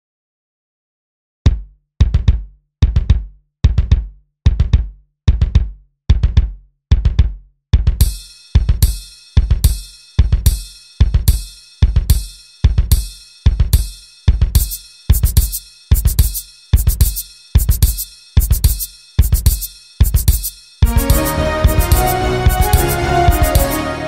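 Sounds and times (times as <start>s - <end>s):
drums: 1.5s - 24.0s
piano: 20.8s - 24.0s
strings: 20.8s - 24.0s.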